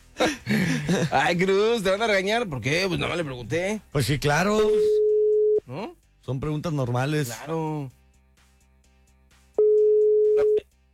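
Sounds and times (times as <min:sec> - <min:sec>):
speech: 0:00.2 - 0:05.0, 0:05.7 - 0:08.0
telephone line tone as a call connects: 0:04.9 - 0:05.6, 0:09.6 - 0:10.6.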